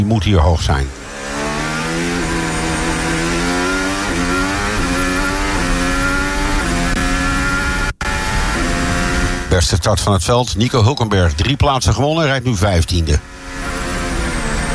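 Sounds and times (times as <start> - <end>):
speech: 0.0 - 1.0, 9.5 - 13.8
onboard racing car engine on a street circuit: 0.9 - 9.8, 13.1 - 14.7.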